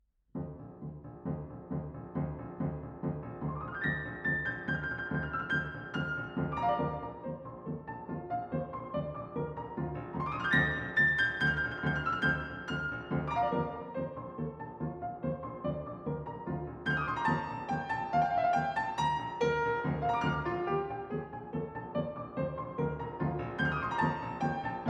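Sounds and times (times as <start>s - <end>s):
piano arrangement of a dance piece: 0.4s - 24.8s.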